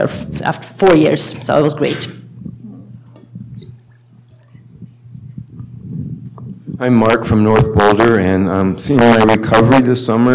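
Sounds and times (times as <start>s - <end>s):
speech: 0.0s - 2.2s, 6.8s - 10.3s
steady low hum: 1.3s - 8.0s
water dripping and gurgling: 2.5s - 6.6s
waterfall water pouring and splashing into a container: 3.6s - 4.7s.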